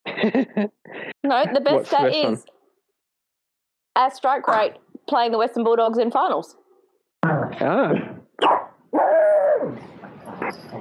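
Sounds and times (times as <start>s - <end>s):
speech: 0.2s - 2.5s, 4.0s - 6.6s, 7.2s - 9.9s
small Shih Tzu dog barking: 8.4s - 9.7s.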